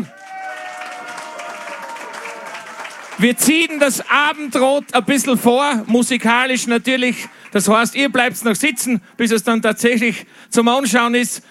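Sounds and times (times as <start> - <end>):
live audience applause at a traditional music gathering: 0.0 - 8.3
speech: 3.2 - 11.4.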